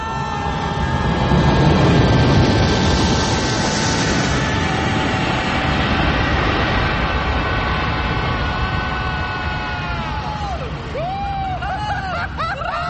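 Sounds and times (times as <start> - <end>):
low-flying airplane roaring overhead coming in to land: 0.0 - 12.8
laughter: 11.4 - 12.8.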